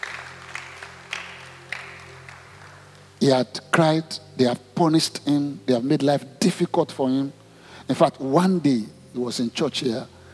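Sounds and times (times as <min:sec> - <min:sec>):
church audience clapping: 0:00.0 - 0:03.2
low electrical hum: 0:00.0 - 0:10.3
speech: 0:03.2 - 0:10.2.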